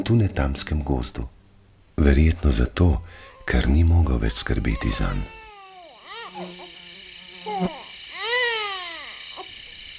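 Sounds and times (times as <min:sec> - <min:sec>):
speech: 0:00.0 - 0:01.4, 0:02.0 - 0:05.4, 0:06.3 - 0:06.7, 0:07.5 - 0:07.8
hungry baby crying: 0:03.2 - 0:09.5.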